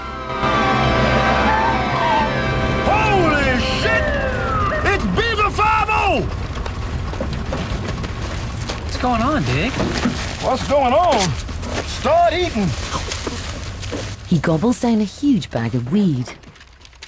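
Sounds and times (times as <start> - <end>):
police car sirens wailing around a plane on an airstrip: 0.0 - 6.9
steady low rumble: 0.0 - 14.7
speech: 9.4 - 12.9, 14.3 - 16.4.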